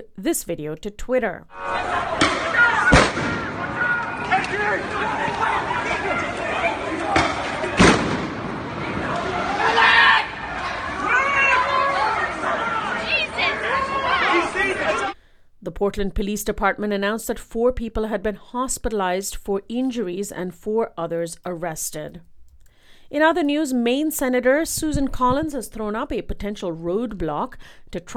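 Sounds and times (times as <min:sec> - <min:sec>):
speech: 0:00.0 - 0:02.1, 0:04.5 - 0:06.4, 0:15.6 - 0:22.3, 0:23.1 - 0:28.1
outdoor crowd of protesters and counter-protesters shouting and chattering: 0:01.5 - 0:15.2
police firecracker and flashbang blasts: 0:02.1 - 0:04.9, 0:07.0 - 0:09.6.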